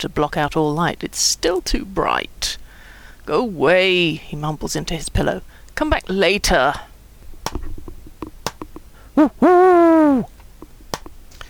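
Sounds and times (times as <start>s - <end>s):
speech: 0.0s - 2.6s, 3.2s - 6.9s, 9.2s - 10.3s
owl hooting: 9.1s - 10.3s.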